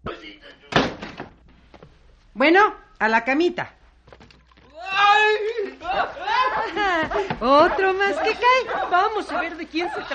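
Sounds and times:
door being pulled shut with a solid thud: 0:00.7 - 0:01.4
speech: 0:02.4 - 0:03.8, 0:06.8 - 0:10.1
laughter: 0:05.5 - 0:10.1.

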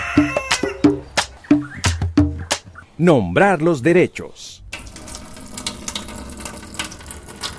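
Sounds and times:
speech: 0:00.2 - 0:01.0, 0:03.0 - 0:04.6
water running from a faucet: 0:04.8 - 0:07.5.

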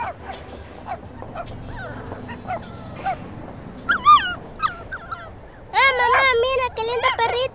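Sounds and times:
dog yelping barks: 0:00.0 - 0:07.5
dog whimpering: 0:00.9 - 0:03.3, 0:03.9 - 0:07.5.

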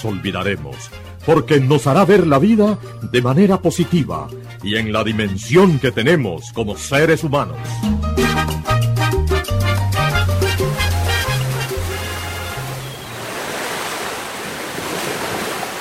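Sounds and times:
speech: 0:00.0 - 0:08.6
musical passage: 0:07.9 - 0:13.0
rough choppy sea waves breaking on a coast on a rainy day: 0:10.7 - 0:15.7.

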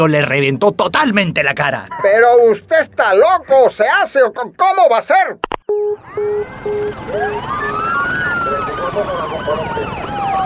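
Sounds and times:
speech: 0:00.0 - 0:08.1, 0:08.9 - 0:10.4
steady beeping: 0:05.7 - 0:09.7
several police sirens wailing and yelping: 0:05.7 - 0:10.4.

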